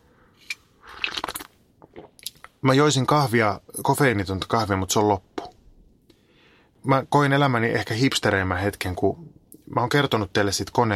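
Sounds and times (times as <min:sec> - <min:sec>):
slurping a sip of tea: 0:00.4 - 0:02.2
wet mouth clicks: 0:00.4 - 0:02.6
person swallowing: 0:00.8 - 0:02.6
speech: 0:02.6 - 0:05.3, 0:06.8 - 0:10.9.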